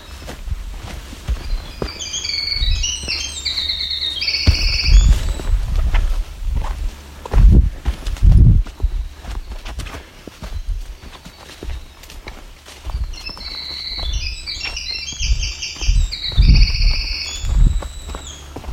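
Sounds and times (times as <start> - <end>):
Winter Wren male singing: 0.0 - 5.8, 8.8 - 18.7
loud thudding footsteps on a trail: 0.0 - 18.7.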